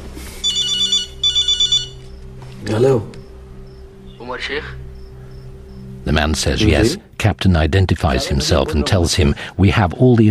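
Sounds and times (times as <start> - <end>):
telephone ringing: 0.4 - 2.0
speech: 2.7 - 3.2, 4.4 - 4.8, 6.1 - 10.3.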